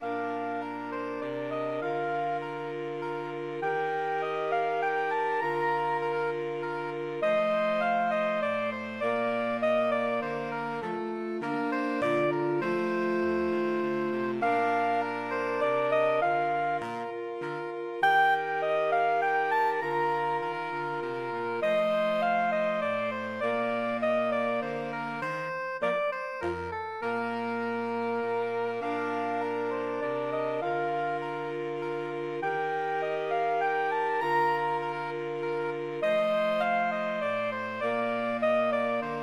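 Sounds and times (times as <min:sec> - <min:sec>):
saxophone quartet playing a minuet: 0:00.0 - 0:39.2.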